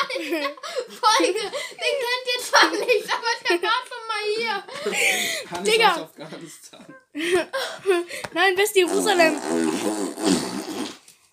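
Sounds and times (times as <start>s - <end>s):
speech: 0.1s - 10.4s
buzzing fart sound likely made with the mouth: 8.8s - 11.1s.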